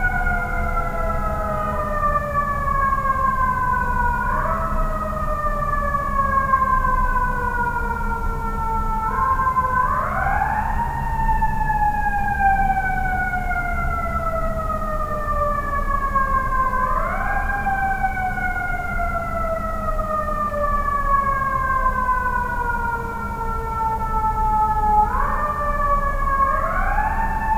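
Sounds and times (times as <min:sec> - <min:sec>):
siren at night: 0:00.0 - 0:27.5.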